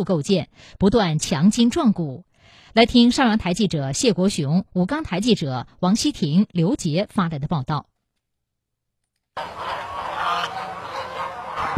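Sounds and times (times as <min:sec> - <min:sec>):
speech: 0:00.0 - 0:07.9, 0:09.4 - 0:09.7
large flock of Wugang bronze geese honking: 0:09.4 - 0:11.7.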